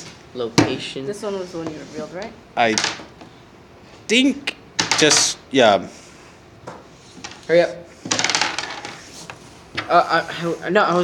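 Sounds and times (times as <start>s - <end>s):
speech: 0.4s - 3.2s, 4.1s - 6.0s, 7.5s - 8.2s, 9.9s - 11.0s
dice clattering across a hard tabletop: 2.6s - 3.1s, 4.8s - 5.4s, 6.7s - 10.0s.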